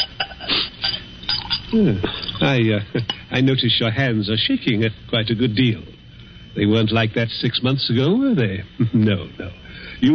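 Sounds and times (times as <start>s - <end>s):
glassware clinking: 0.0s - 3.3s
speech: 1.7s - 6.0s, 6.6s - 10.1s.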